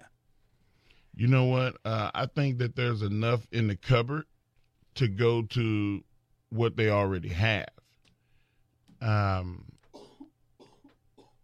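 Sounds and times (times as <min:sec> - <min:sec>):
speech: 0:01.2 - 0:04.3, 0:05.0 - 0:07.8, 0:09.0 - 0:09.7
loud harsh cough: 0:09.9 - 0:11.4.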